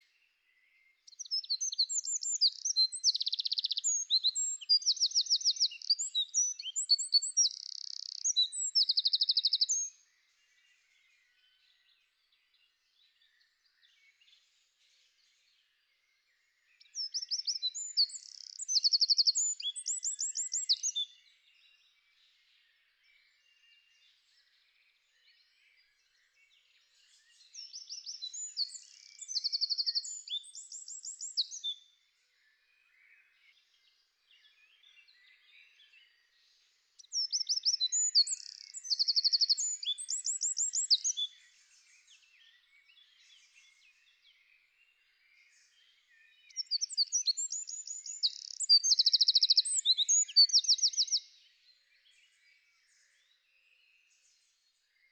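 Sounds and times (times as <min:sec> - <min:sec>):
wren singing: 0:01.1 - 0:09.9, 0:17.0 - 0:21.0, 0:27.7 - 0:31.7, 0:37.0 - 0:41.4, 0:46.5 - 0:51.3.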